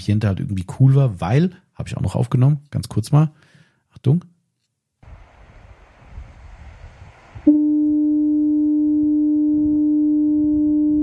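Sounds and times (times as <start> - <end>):
speech: 0.0 - 4.3
surf-like noise: 5.0 - 8.0
low rumbling water: 5.0 - 8.6
deep lighthouse foghorn blast in fog on the coast: 7.0 - 11.0.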